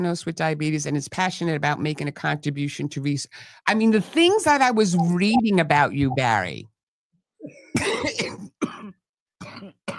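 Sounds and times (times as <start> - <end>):
speech: 0.0 - 6.7, 7.4 - 8.4
person coughing from excitement: 7.4 - 9.9.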